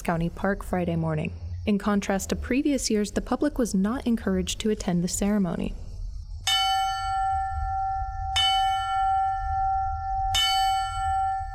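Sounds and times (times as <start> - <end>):
speech: 0.1 - 5.8
memorial bell ringing: 6.5 - 11.5.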